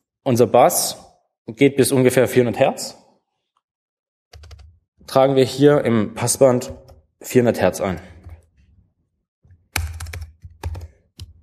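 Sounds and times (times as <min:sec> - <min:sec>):
speech: 0:00.2 - 0:03.0, 0:05.1 - 0:08.1
typing on a computer keyboard: 0:04.3 - 0:04.7, 0:09.8 - 0:11.4.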